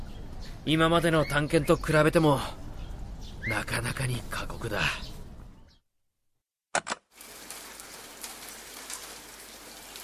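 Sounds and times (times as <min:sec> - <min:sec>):
speech: 0:00.6 - 0:02.6, 0:03.5 - 0:05.1
sharp clicks: 0:06.7 - 0:07.0
steady rain falling outside a cave: 0:07.1 - 0:10.0.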